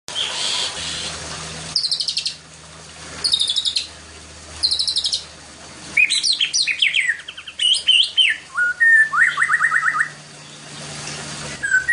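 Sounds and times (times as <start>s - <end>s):
White-rumped shama singing whistled phrases and buzzy trills: 1.7s - 2.4s, 3.2s - 3.9s, 4.6s - 5.3s, 6.0s - 10.8s, 11.6s - 11.9s.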